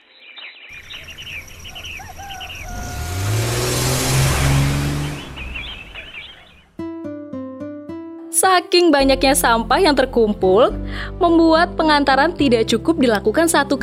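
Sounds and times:
birds chirping: 0:00.0 - 0:06.8
open-bed box truck engine rumbling: 0:00.8 - 0:06.8
speech: 0:08.6 - 0:13.8.

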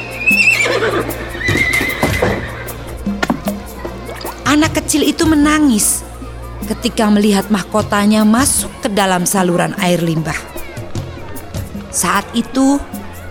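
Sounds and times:
horse neighing with a loud, high whinny: 0:00.1 - 0:02.9
hooves of a horse pulling a traditional andong carriage clopping: 0:00.3 - 0:03.7
speech: 0:04.9 - 0:06.0, 0:06.7 - 0:10.5, 0:11.9 - 0:12.9.

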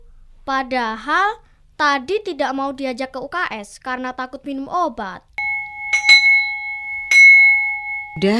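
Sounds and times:
speech: 0:00.4 - 0:05.3, 0:08.2 - 0:08.3
electric school bell ringing to signal the start of class: 0:05.4 - 0:08.3.

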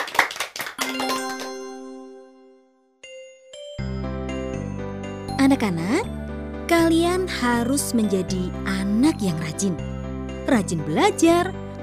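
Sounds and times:
hands clapping: 0:00.0 - 0:01.9
ringing chime: 0:00.8 - 0:05.1
speech: 0:05.4 - 0:11.8.

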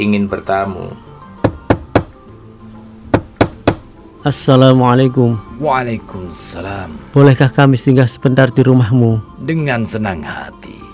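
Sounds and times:
speech: 0:00.0 - 0:01.0, 0:04.2 - 0:10.8
young men knocking on a door: 0:01.4 - 0:02.2, 0:03.1 - 0:03.9.

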